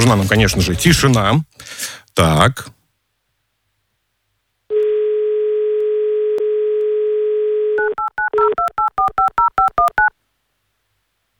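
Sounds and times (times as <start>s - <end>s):
speech: 0.0s - 2.8s
telephone dial tone: 4.7s - 10.1s.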